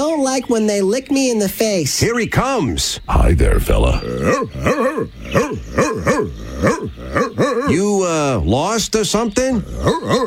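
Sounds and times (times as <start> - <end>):
speech: 0.2 - 10.2
dog barking: 4.2 - 7.8, 9.8 - 10.2.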